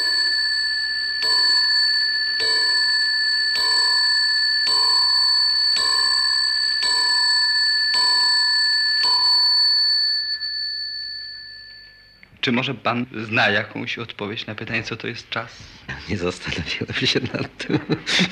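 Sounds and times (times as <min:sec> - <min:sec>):
bronze Louis-style mantel clock bell striking: 0:00.0 - 0:12.2
speech: 0:12.4 - 0:18.2
laughter: 0:16.9 - 0:18.2.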